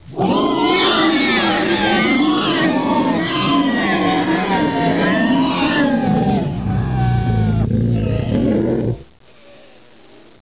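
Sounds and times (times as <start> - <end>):
robot scream: 0.1 - 9.0.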